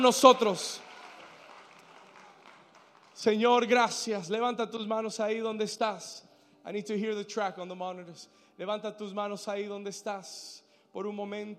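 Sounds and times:
speech: 0.0 - 0.8, 3.2 - 11.5
crowd applauding: 0.0 - 4.0.

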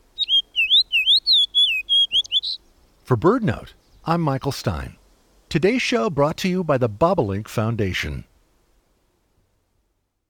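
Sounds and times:
fox sparrow singing: 0.0 - 2.6
speech: 3.1 - 8.3.

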